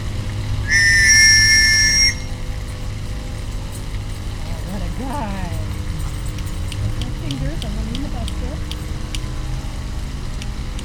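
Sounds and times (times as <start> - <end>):
low hum: 0.0 - 10.8
screechy dog training whistle blast: 0.6 - 2.5.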